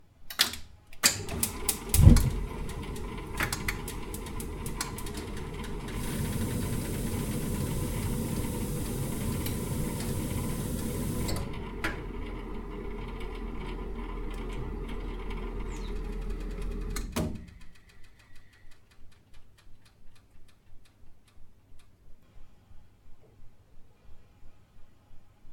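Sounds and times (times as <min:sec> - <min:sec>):
gas heater boiler: 0:01.0 - 0:17.5.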